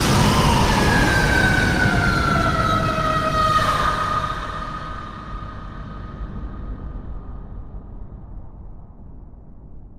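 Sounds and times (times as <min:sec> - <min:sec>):
sudden loud horror scream: 0:00.0 - 0:06.5.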